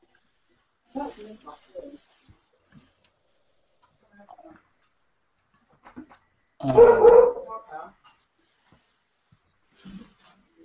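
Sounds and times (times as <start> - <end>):
people talking: 1.0 - 2.1, 6.6 - 8.0
dog barking: 6.6 - 7.6.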